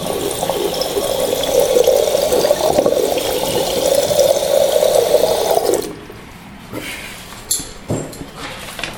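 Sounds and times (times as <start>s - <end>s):
water rumbling and bubbling in an electric kettle: 0.0s - 6.1s.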